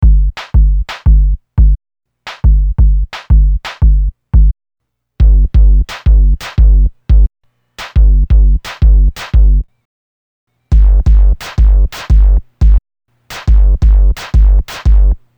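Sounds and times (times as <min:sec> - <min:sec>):
groove machine beat: 0:00.0 - 0:01.8, 0:02.4 - 0:04.5, 0:05.2 - 0:07.3, 0:07.9 - 0:09.6, 0:10.7 - 0:12.8, 0:13.4 - 0:15.2.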